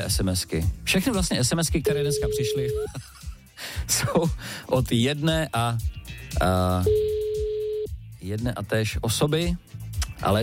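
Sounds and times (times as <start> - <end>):
speech: 0.0 - 7.0, 8.2 - 10.4
ringback tone of an unanswered telephone call: 1.9 - 2.8, 6.8 - 7.9.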